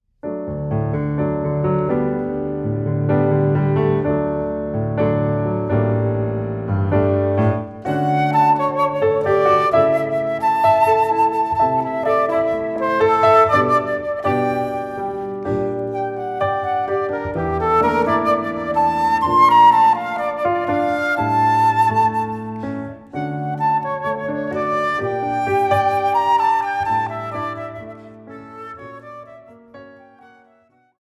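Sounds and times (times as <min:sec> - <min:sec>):
piano: 0:00.2 - 0:30.9
flute: 0:06.9 - 0:30.9.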